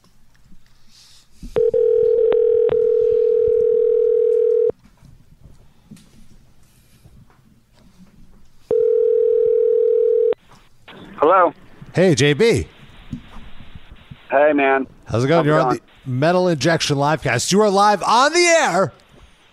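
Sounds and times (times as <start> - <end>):
telephone dial tone on a line while a call is dialed: 1.6 - 4.7, 8.7 - 10.4
speech: 11.3 - 12.8, 14.4 - 19.0.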